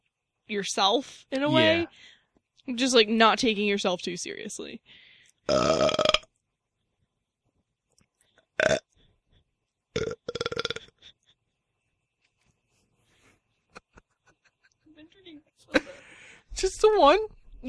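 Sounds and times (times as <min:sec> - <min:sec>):
speech: 0:00.5 - 0:06.0, 0:17.0 - 0:17.6
person burping after drinking Coke: 0:05.5 - 0:06.3, 0:08.6 - 0:09.0, 0:10.0 - 0:11.1.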